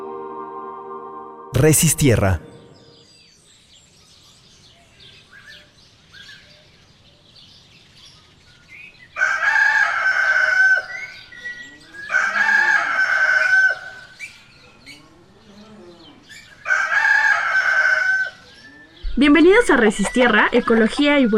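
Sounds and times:
speech: 0:01.5 - 0:02.5, 0:19.7 - 0:21.3
birds chirping in the countryside: 0:01.6 - 0:09.2, 0:10.8 - 0:21.3
rooster crowing in the countryside: 0:09.2 - 0:11.1, 0:11.8 - 0:14.1, 0:16.6 - 0:18.5
softer clucking: 0:19.2 - 0:21.3.

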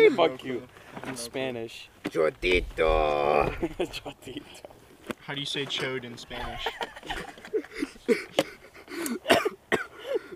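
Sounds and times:
speech: 0:00.0 - 0:04.7, 0:05.3 - 0:08.5
laughter: 0:03.1 - 0:04.6, 0:06.4 - 0:09.2
short sharp coughs: 0:08.1 - 0:10.2.

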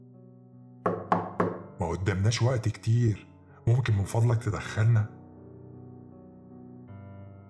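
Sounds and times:
heavy knocks on a door: 0:00.9 - 0:01.8
speech: 0:01.8 - 0:05.2.

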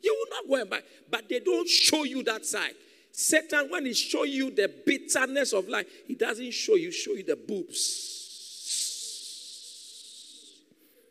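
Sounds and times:
speech: 0:00.5 - 0:08.2
person hissing like a snake: 0:08.0 - 0:10.6.

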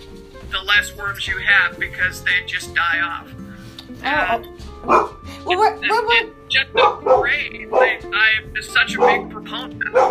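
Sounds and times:
speech: 0:00.4 - 0:10.1
dog barking with sharp yelping barks: 0:04.8 - 0:05.2, 0:06.7 - 0:08.0, 0:08.9 - 0:09.3, 0:09.9 - 0:10.1.

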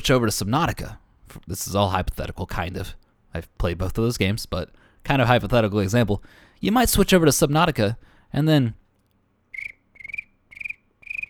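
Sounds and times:
speech: 0:00.0 - 0:08.8
crickets chirping in rapid pulsing trills: 0:09.5 - 0:11.2.

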